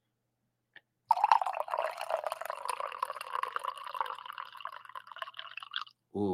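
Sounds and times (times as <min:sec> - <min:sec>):
coffee pouring into a cup: 0:01.1 - 0:05.9
speech: 0:06.2 - 0:06.3.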